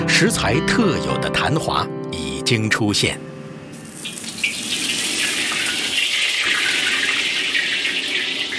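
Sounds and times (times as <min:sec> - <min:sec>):
speech: 0:00.1 - 0:03.3
tap water running over blanched beef tripe being rinsed: 0:03.7 - 0:08.5.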